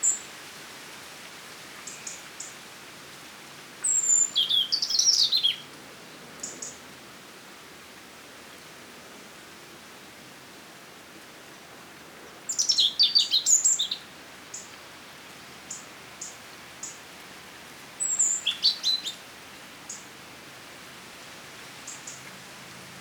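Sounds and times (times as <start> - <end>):
faint hiss: 0.0 - 22.9
European robin Erithacus rubecula singing: 3.8 - 5.7, 12.5 - 14.9, 18.0 - 19.2.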